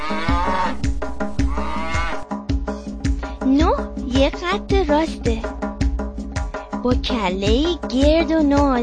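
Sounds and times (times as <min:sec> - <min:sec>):
cow mooing in a counting song: 0:00.0 - 0:00.8, 0:01.4 - 0:02.2
upbeat counting song music: 0:00.0 - 0:08.8
speech: 0:04.3 - 0:05.6, 0:06.8 - 0:08.8.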